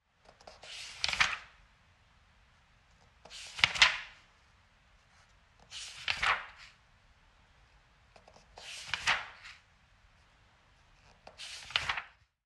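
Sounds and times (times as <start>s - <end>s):
pages of a book being flipped: 0.3s - 1.5s, 3.0s - 4.2s, 5.6s - 6.8s, 8.2s - 9.6s, 11.0s - 12.3s.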